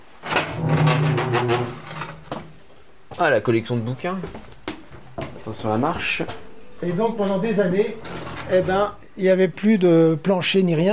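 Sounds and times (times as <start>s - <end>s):
wooden door creaking: 0.3s - 2.4s, 7.9s - 8.9s
speech: 1.4s - 1.8s, 3.2s - 4.5s, 5.5s - 10.9s.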